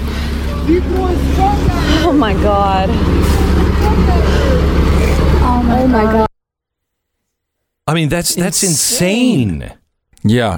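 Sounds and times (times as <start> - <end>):
pickup truck engine rumbling: 0.0 - 6.3
speech: 0.7 - 6.3, 7.9 - 10.5.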